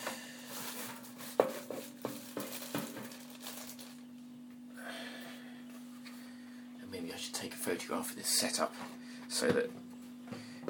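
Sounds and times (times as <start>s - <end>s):
steady low hum: 0.0s - 10.6s
plastic microwave cover knocking and clattering: 0.7s - 3.9s
speech: 7.4s - 9.8s.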